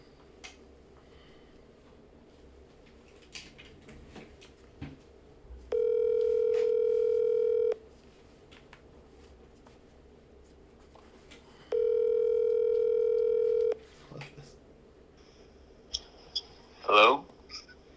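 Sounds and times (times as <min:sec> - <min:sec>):
phone line ring tone over a speakerphone: 0:05.7 - 0:07.8, 0:11.7 - 0:13.8.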